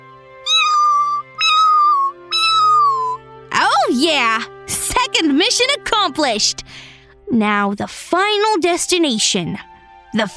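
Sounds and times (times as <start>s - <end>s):
cat meowing: 0.5s - 3.2s
speech: 4.0s - 4.5s, 5.1s - 10.3s.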